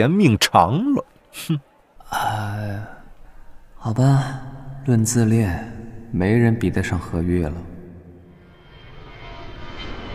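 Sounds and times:
speech: 0:00.0 - 0:03.0, 0:03.8 - 0:07.7
airliner engine roar in flight between Beijing and Guangzhou: 0:08.4 - 0:10.1.

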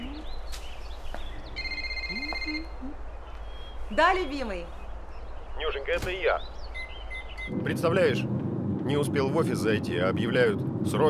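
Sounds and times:
constant low hum: 0:00.0 - 0:11.0
mobile phone ringing with a bright electronic ringtone: 0:01.6 - 0:02.8
speech: 0:03.9 - 0:04.8, 0:05.6 - 0:06.5, 0:07.5 - 0:11.0.

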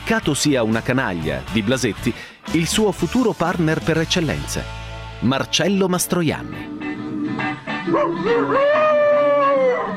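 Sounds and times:
speech: 0:00.1 - 0:06.7, 0:07.9 - 0:08.8
man howling hungrily like a wolf in a film scene: 0:06.6 - 0:09.9.

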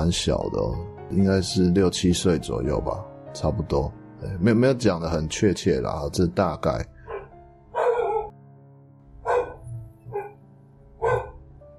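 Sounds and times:
speech: 0:00.0 - 0:06.9
household dog barking: 0:07.0 - 0:08.3, 0:09.2 - 0:10.4, 0:11.0 - 0:11.4.

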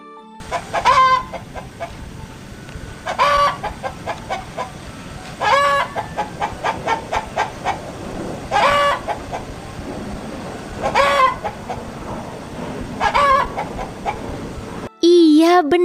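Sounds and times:
chicken clucking: 0:00.4 - 0:09.8, 0:10.6 - 0:12.0, 0:13.0 - 0:14.3
chicken cackling: 0:00.4 - 0:14.8.

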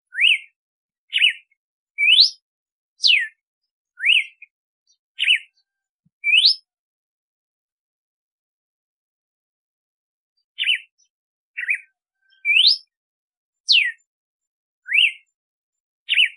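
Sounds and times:
female red-cowled cardinal singing to stimulate the male: 0:00.1 - 0:02.4, 0:03.0 - 0:03.4, 0:04.0 - 0:04.5, 0:05.2 - 0:05.6, 0:06.2 - 0:06.7, 0:10.6 - 0:10.9, 0:11.6 - 0:12.9, 0:13.7 - 0:14.0, 0:14.8 - 0:15.3, 0:16.1 - 0:16.3.

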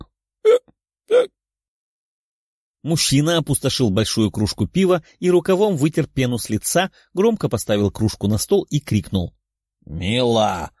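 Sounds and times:
drunken man hiccuping: 0:00.0 - 0:01.4
speech: 0:02.8 - 0:10.7.

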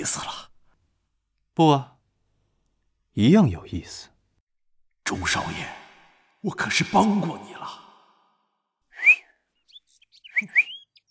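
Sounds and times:
speech: 0:00.0 - 0:00.5, 0:01.6 - 0:01.9, 0:03.2 - 0:04.1, 0:05.1 - 0:05.8, 0:06.4 - 0:07.8, 0:10.4 - 0:10.6
short human whistle: 0:08.9 - 0:11.1
birds chirping outside a window: 0:09.6 - 0:11.1.

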